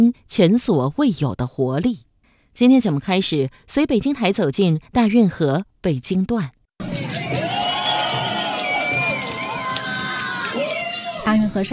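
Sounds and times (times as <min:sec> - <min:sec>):
speech: 0:00.0 - 0:07.4, 0:11.3 - 0:11.7
spectators cheering and shouting at a dragon boat race on the Grand Canal in Beijing: 0:06.8 - 0:11.4.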